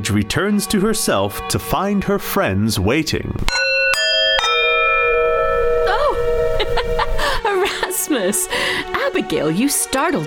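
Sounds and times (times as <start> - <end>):
speech: 0.0 - 3.8, 8.1 - 10.2
clock chiming three o'clock: 3.5 - 7.4.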